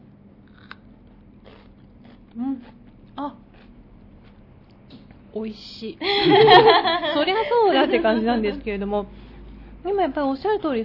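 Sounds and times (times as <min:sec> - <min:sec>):
low steady hum: 0:00.0 - 0:10.8
crunchy cucumber dipped in miso being bitten and chewed: 0:00.4 - 0:05.2
speech: 0:02.4 - 0:03.4, 0:05.4 - 0:09.2, 0:09.8 - 0:10.8
laughter: 0:06.0 - 0:08.7.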